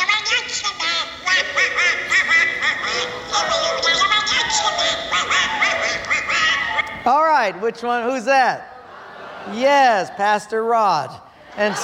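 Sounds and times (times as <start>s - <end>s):
cartoon duck character's squawky quacking voice: 0.0s - 6.9s
laughter: 0.9s - 6.8s, 8.5s - 10.6s, 11.4s - 11.8s
speech: 7.1s - 8.7s, 9.4s - 11.8s.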